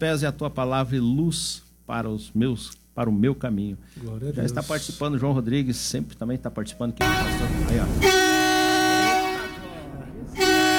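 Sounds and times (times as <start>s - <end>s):
speech: 0.0s - 8.4s
truck horns honking: 7.0s - 10.7s.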